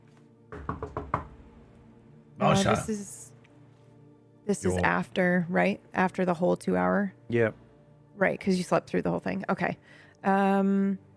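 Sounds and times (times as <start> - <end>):
knocking on the door of a room next door: 0.5 - 1.5
speech: 2.4 - 3.2, 4.5 - 7.6, 8.2 - 11.1.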